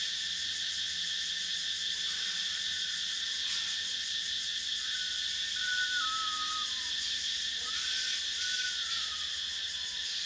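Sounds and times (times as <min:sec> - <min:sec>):
other forest insects at night in a Thailand forest: 0:00.0 - 0:10.2
forest cicadas buzzing at night in a Thailand forest: 0:02.6 - 0:10.2
bird singing clear whistled notes: 0:05.6 - 0:06.9.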